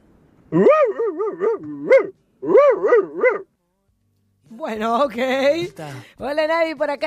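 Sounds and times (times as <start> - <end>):
speech: 0.5 - 2.1, 4.6 - 7.0
person imitating a dog barking: 0.5 - 3.5.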